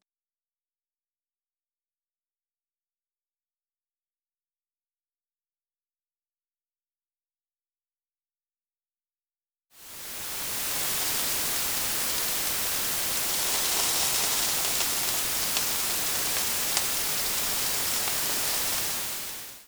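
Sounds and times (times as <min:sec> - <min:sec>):
sizzle: 0:09.8 - 0:19.6
white noise: 0:09.8 - 0:19.6.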